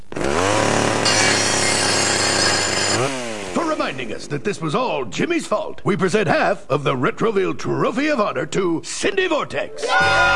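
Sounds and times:
chainsaw revving and cutting: 0.1 - 3.8
speech: 3.9 - 10.3.

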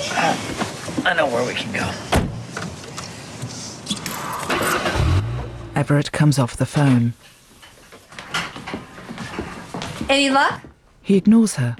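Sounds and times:
speech: 0.2 - 2.2, 5.8 - 7.4, 10.1 - 11.7
car engine starting: 4.1 - 6.2.

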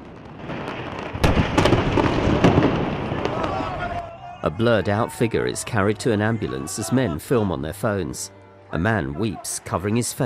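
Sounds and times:
huge explosion over a city at night: 0.0 - 3.6
sharp crackling bursts: 0.0 - 3.9
speech: 4.4 - 10.2.

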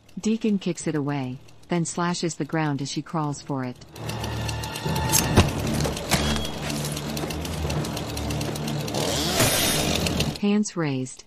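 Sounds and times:
speech: 0.2 - 4.2, 4.8 - 5.7, 10.4 - 11.2
chainsaw motor revving up and down: 3.9 - 10.4.

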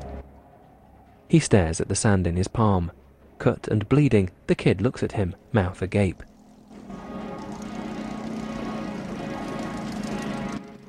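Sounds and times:
speech: 1.3 - 6.3
gyrocopter engine droning: 5.2 - 10.8.

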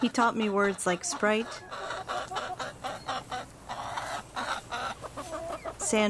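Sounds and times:
speech: 0.0 - 2.4
hen clucking as it is picked up and petted: 0.0 - 6.0.

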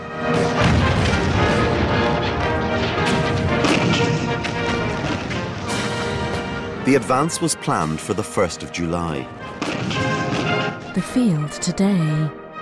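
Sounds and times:
shell explosions from an artillery bombardment of German positions: 0.2 - 6.8, 9.3 - 11.5
cannons firing in an artillery bombardment of German positions: 0.3 - 6.7, 9.4 - 11.6
speech: 6.9 - 10.0, 11.0 - 12.4.

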